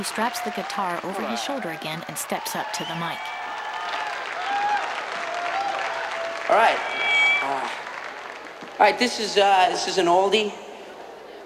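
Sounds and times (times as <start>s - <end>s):
speech: 0.0s - 3.4s, 6.5s - 7.8s, 8.8s - 10.6s
concert crowd cheering and applauding: 0.0s - 11.4s
faint thin tone: 6.5s - 8.1s.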